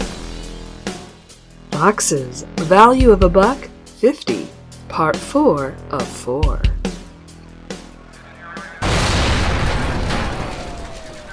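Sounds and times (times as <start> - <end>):
speech: 1.8 - 6.7
loud explosion with roaring rumble of debris: 8.8 - 11.3
sharp booms: 8.8 - 11.3.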